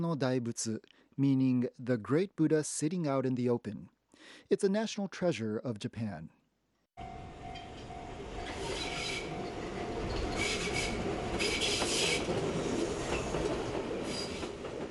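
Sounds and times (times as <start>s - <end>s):
speech: 0.0s - 6.4s
train rolling along rails from central Kamakura Japan toward Kotoku-in Temple: 7.0s - 14.8s
metallic train wheel squeals and screeches: 7.7s - 14.5s.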